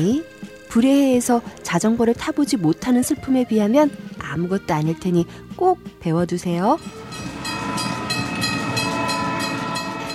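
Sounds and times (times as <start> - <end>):
speech: 0.0 - 7.2
train rolling along rails from Brussels toward Bruges in Belgium: 6.8 - 10.1.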